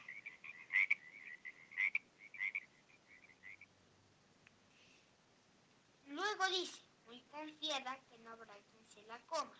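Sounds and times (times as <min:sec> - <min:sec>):
frog croaking: 0:00.0 - 0:03.8
speech: 0:06.5 - 0:09.5.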